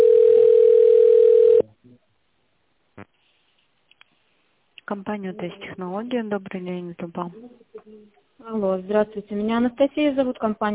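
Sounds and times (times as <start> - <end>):
telephone line tone while the call connects to an operator: 0.0 - 1.6
speech: 4.9 - 10.7.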